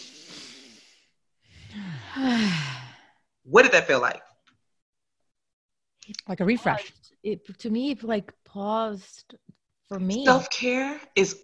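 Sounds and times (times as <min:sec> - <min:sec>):
big deep breath with sighing exhale: 0:00.0 - 0:03.3
speech: 0:02.2 - 0:02.7, 0:03.5 - 0:04.3, 0:06.3 - 0:11.4.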